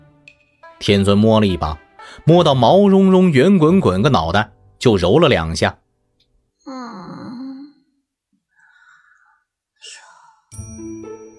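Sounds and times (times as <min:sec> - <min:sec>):
speech: 0:00.8 - 0:05.8
small chubby child's sleepy drawn-out grunt in bedding: 0:06.6 - 0:08.0
soft breathy sounds: 0:06.6 - 0:10.7.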